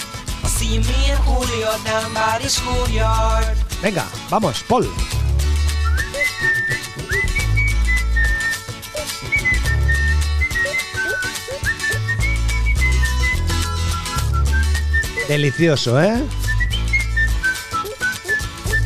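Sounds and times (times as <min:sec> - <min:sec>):
speech: 0:00.6 - 0:05.4, 0:15.3 - 0:16.4
bright melodic whistle carrying a tune: 0:05.7 - 0:18.8.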